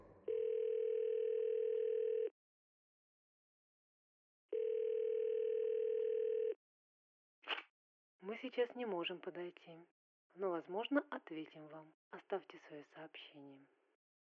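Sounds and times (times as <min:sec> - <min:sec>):
telephone ringing with a steady electronic tone: 0:00.0 - 0:02.3, 0:04.5 - 0:06.6
speech: 0:08.2 - 0:13.8.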